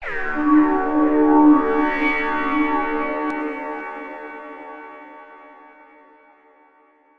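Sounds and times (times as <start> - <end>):
SH101 synthesizer tone effect: 0.0 - 4.3.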